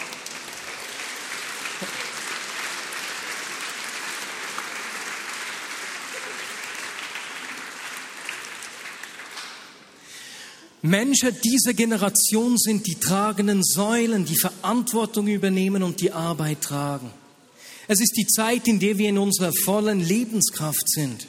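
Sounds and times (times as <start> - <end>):
large audience clapping: 0.0 - 10.0
speech: 10.8 - 17.2, 17.9 - 21.2.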